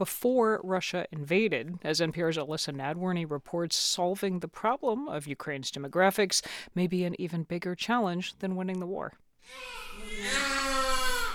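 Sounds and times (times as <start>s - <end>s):
speech: 0.0s - 10.6s
newborn baby crying in hospital hallway: 9.4s - 11.3s.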